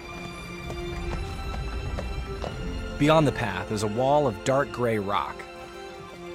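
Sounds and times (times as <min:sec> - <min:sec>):
hoofbeats of a dark horse pulling a two-wheeled enclosed cart on a narrow dirt path: 0:00.0 - 0:03.2
sustained musical drone: 0:00.0 - 0:06.3
speech: 0:03.0 - 0:05.5.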